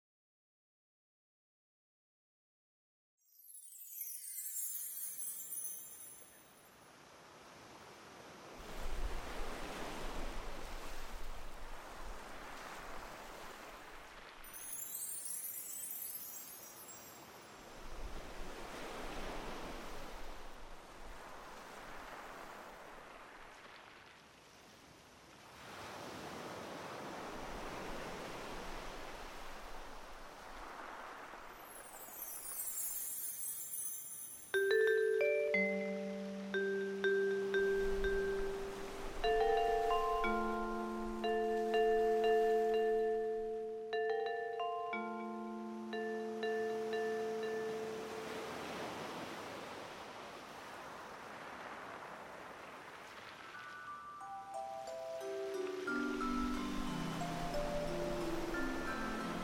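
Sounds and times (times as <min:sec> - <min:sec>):
bells ringing: 0:03.3 - 0:06.5, 0:14.5 - 0:17.5, 0:31.6 - 0:48.8, 0:53.6 - 0:59.4
waves: 0:03.4 - 0:59.4.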